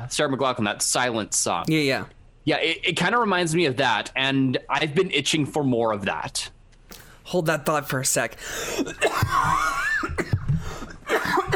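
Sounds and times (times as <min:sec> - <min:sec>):
speech: 0:00.1 - 0:06.6, 0:07.3 - 0:10.4, 0:11.1 - 0:11.5
raspy wheezy strained breathing: 0:08.4 - 0:09.0, 0:10.4 - 0:11.1
person in a coughing fit: 0:08.7 - 0:11.5.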